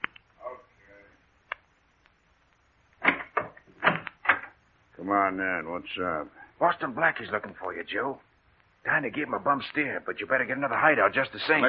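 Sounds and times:
door being opened: 0:03.0 - 0:04.6
speech: 0:05.1 - 0:08.3, 0:08.9 - 0:11.6.

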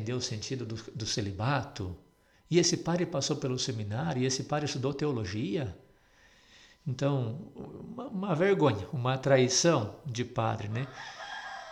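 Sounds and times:
speech: 0:00.0 - 0:05.8, 0:06.8 - 0:11.2
rooster crowing: 0:10.6 - 0:11.7.

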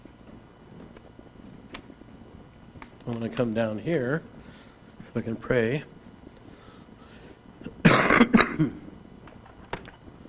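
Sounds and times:
speech: 0:03.1 - 0:04.4, 0:05.2 - 0:06.0, 0:08.6 - 0:08.8
person clearing throat: 0:07.6 - 0:08.9
person coughing hard: 0:07.6 - 0:08.9.

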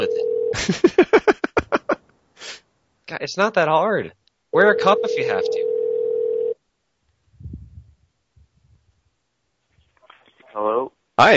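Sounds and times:
telephone tone as a phone call is placed: 0:00.0 - 0:00.6, 0:04.8 - 0:06.6
speech: 0:00.0 - 0:01.0, 0:03.2 - 0:05.6, 0:10.6 - 0:11.3
laughter: 0:00.6 - 0:02.0
faint low rumbling: 0:07.2 - 0:09.2.

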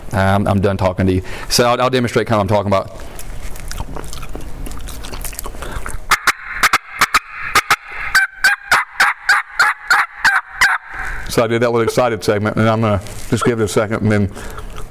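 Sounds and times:
speech: 0:00.1 - 0:03.2, 0:11.4 - 0:14.6
turkey hen clucking and purring made on a game call: 0:06.1 - 0:11.4, 0:14.4 - 0:14.9.

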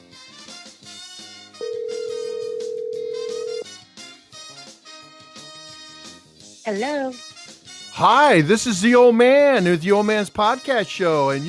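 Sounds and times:
music: 0:00.0 - 0:11.4
phone ringback or dial tone as a call is placed: 0:01.6 - 0:03.6
speech: 0:06.7 - 0:07.3, 0:08.0 - 0:11.4.

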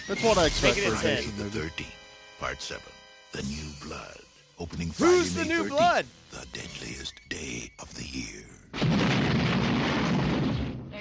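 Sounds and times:
speech: 0:00.1 - 0:09.2
loud booming explosion in a movie trailer: 0:08.7 - 0:10.9.

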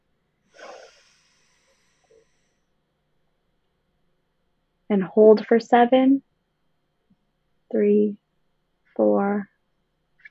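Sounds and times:
deep inhalation through the nose during a guided breathing exercise: 0:00.5 - 0:02.7
speech: 0:04.9 - 0:06.3, 0:07.7 - 0:08.2, 0:09.0 - 0:09.5.

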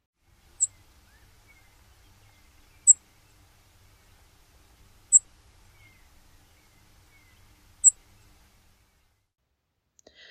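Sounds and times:
Brewer's sparrow call notes: 0:00.4 - 0:09.1.

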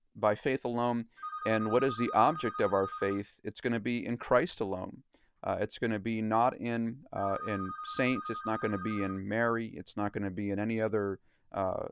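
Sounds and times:
speech: 0:00.2 - 0:11.9
phone ringing with a steady electronic tone: 0:01.2 - 0:03.2, 0:07.2 - 0:09.2.

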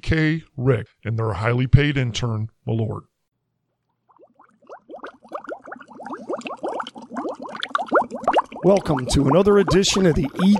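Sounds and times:
speech: 0:00.0 - 0:03.1, 0:08.6 - 0:10.5
water bubbling in a two-person hot tub atop a water tower: 0:03.9 - 0:10.5.

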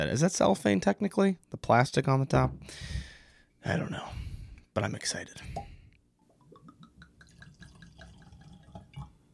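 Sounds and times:
speech: 0:00.0 - 0:03.0, 0:03.6 - 0:04.2, 0:04.8 - 0:05.7
Jameson Black Barrel whiskey being poured into a glass: 0:06.4 - 0:09.3.

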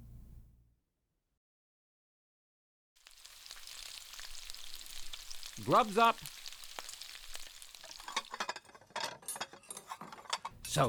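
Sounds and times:
food sizzling and crackling in a hot pan: 0:03.0 - 0:08.8
speech: 0:05.6 - 0:06.4.

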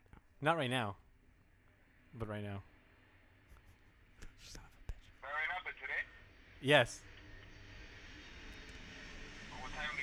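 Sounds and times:
speech: 0:00.4 - 0:01.0, 0:02.1 - 0:02.7, 0:06.6 - 0:07.1
airplane passing overhead: 0:05.9 - 0:10.0.

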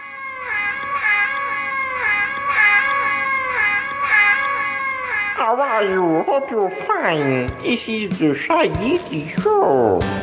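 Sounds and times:
cat meowing insistently: 0:00.0 - 0:07.6
speech: 0:05.5 - 0:10.2.

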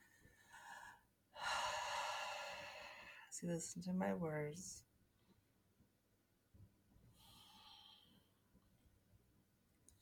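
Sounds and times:
slow breathing during a guided meditation: 0:00.0 - 0:03.3, 0:07.1 - 0:08.5
speech: 0:03.4 - 0:04.9.

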